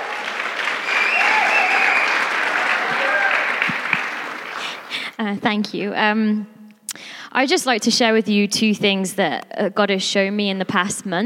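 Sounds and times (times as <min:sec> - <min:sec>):
steady applause from a sizable audience: 0:00.0 - 0:05.1
speech: 0:05.2 - 0:06.6, 0:07.4 - 0:11.2.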